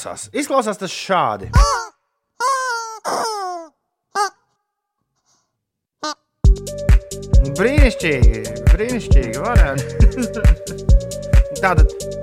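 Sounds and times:
speech: 0.0 - 1.9, 7.9 - 12.2
long yellow rubber duck dog chew toy squeaking a melody: 1.6 - 4.5, 6.0 - 6.3
laughter: 9.7 - 10.8.

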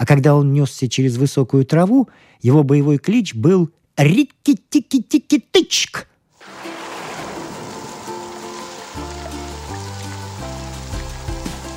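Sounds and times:
speech: 0.1 - 6.7
pouring rain from a midsummer downpour: 6.4 - 11.7
rushing water: 6.4 - 11.7.

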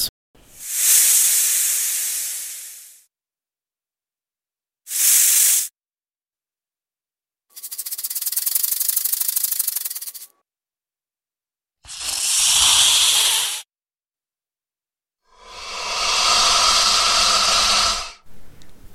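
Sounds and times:
snake hissing: 0.5 - 3.0, 4.9 - 5.7, 7.6 - 10.3, 11.9 - 13.7, 15.3 - 18.2.

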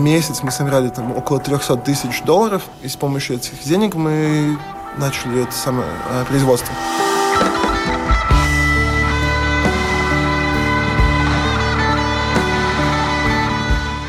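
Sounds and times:
speech: 0.0 - 7.1
musical Tesla coil playing a melody of harsh electric buzzing tones: 4.4 - 14.0.

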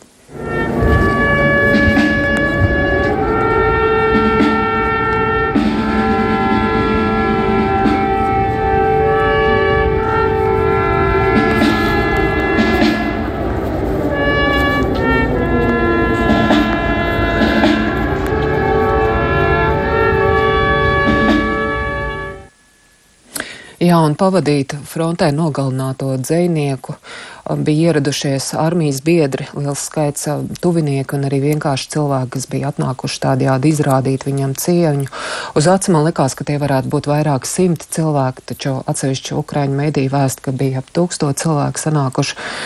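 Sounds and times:
air raid siren wailing in Ukraine: 0.2 - 23.2
brass band playing a slow funeral march at a funeral procession in Ukraine: 0.3 - 22.5
speech: 23.9 - 42.6.

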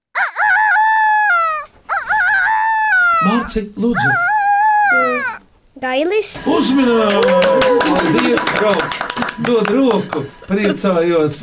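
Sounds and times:
person imitating a rooster crowing: 0.1 - 5.4, 6.8 - 7.9
speech: 3.5 - 4.3, 4.9 - 11.4
laughter: 6.4 - 11.4.

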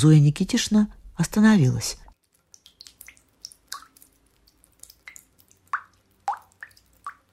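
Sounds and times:
speech: 0.0 - 2.0
water dripping from a bathroom tap: 2.1 - 7.3.

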